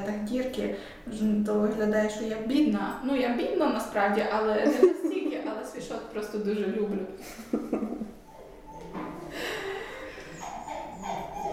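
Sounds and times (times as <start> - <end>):
speech: 0.3 - 5.0, 5.9 - 7.6
dog yelping: 8.2 - 9.2, 10.2 - 11.5
dog whining for attention: 8.2 - 11.5.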